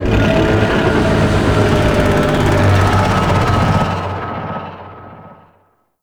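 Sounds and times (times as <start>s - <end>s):
void dragon idle vocalization: 0.0s - 4.3s.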